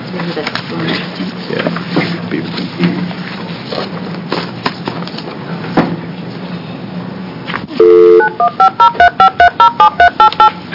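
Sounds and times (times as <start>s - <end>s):
speech: 0.2s - 2.6s
phone line dial tone humming: 7.7s - 10.6s.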